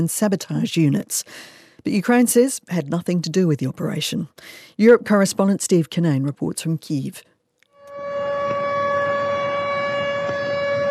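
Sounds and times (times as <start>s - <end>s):
speech: 0.0s - 7.3s
air raid siren wailing in Belgorod after an attack across the border: 7.8s - 10.8s.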